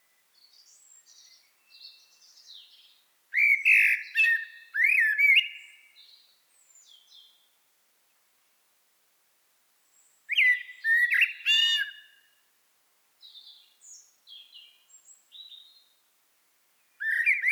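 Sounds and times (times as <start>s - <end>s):
Common blackbird (Turdus merula) singing: 0.4s - 6.2s, 10.3s - 12.2s, 13.2s - 15.9s, 17.0s - 17.5s.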